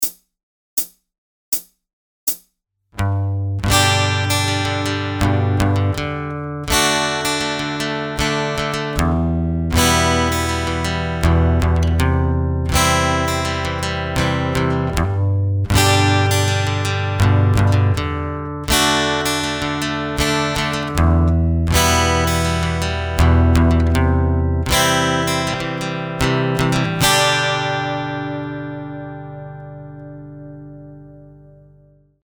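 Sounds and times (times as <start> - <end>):
pick strumming a modern strumming pattern: 3.0 - 32.0.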